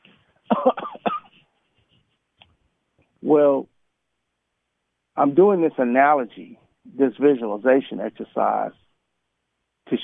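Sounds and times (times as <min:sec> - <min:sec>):
person acting out a coughing fit: 0:00.5 - 0:01.4
speech: 0:03.3 - 0:03.7, 0:05.2 - 0:08.8.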